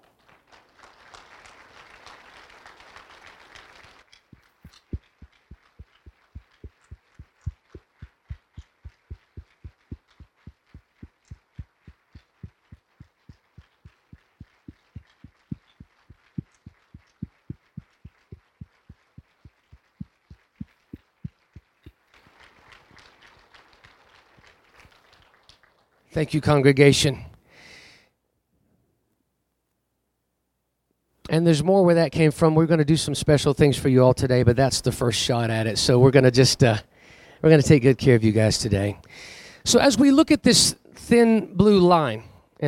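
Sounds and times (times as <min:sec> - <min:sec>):
large crowd applauding in rhythmic unison: 0:00.0 - 0:26.4
speech: 0:26.1 - 0:27.3, 0:31.4 - 0:42.6.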